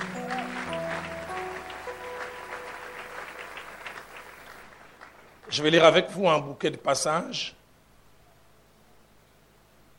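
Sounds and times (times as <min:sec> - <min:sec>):
church congregation applauding: 0:00.0 - 0:06.0
speech: 0:05.5 - 0:07.6.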